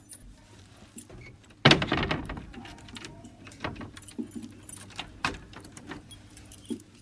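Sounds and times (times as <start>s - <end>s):
keys jangling: 2.6s - 7.0s.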